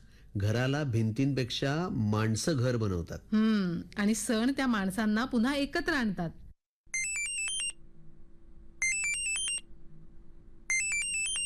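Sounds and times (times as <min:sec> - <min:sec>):
speech: 0:00.4 - 0:06.4
phone ringtone for an incoming video call: 0:06.9 - 0:07.8, 0:08.8 - 0:09.6, 0:10.7 - 0:11.4.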